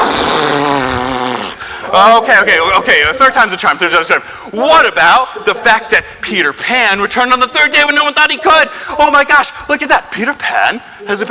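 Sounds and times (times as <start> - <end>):
fart sound effect: 0.0 - 1.6
speech: 1.9 - 11.2.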